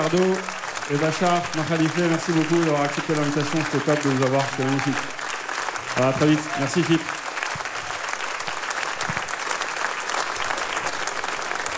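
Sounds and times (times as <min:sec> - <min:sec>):
speech: 0:00.0 - 0:05.2, 0:06.0 - 0:07.2
audience applause: 0:00.0 - 0:11.7.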